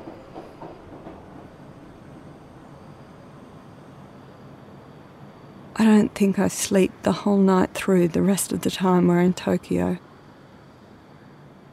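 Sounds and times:
faint rhythmic rail clacks: 0.0 - 1.8
subway train in Tokyo rumbling along the rails: 0.0 - 11.7
speech: 5.8 - 10.1.

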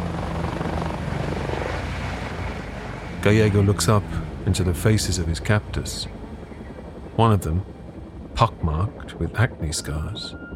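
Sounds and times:
helicopter lifting off from scrubland: 0.0 - 10.5
speech: 3.2 - 6.2, 7.2 - 7.8, 8.4 - 10.5.

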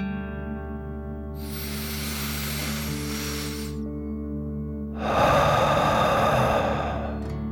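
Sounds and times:
quiet steady music bed: 0.0 - 7.5
person taking a deep breath in and a slow breath out through the mouth: 1.4 - 4.0, 4.8 - 7.5.

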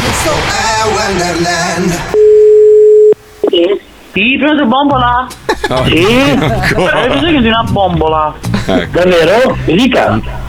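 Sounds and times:
speech: 0.2 - 2.2, 4.2 - 10.4
telephone dial tone: 2.2 - 3.2
laughter: 5.3 - 10.3.

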